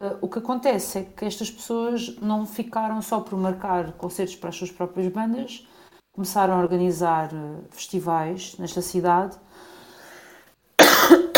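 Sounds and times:
speech: 0.2s - 9.7s
person with an allergy coughing harshly: 10.8s - 11.3s.

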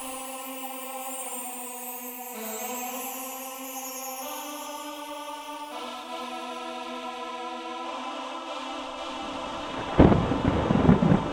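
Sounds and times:
rain-like hiss: 9.1s - 11.3s
thunder crash from lightning strike: 9.6s - 11.3s.

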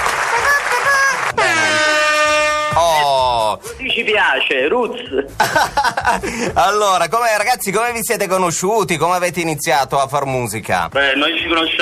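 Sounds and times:
laughter: 0.2s - 1.4s, 4.9s - 6.6s
air horn blasts: 1.3s - 3.3s
speech: 3.9s - 11.8s.

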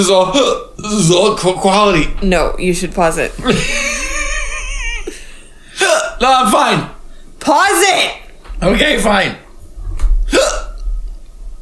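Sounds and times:
speech: 0.0s - 4.0s, 6.2s - 9.4s
laughter: 3.4s - 6.1s
hiccup: 10.3s - 10.9s.

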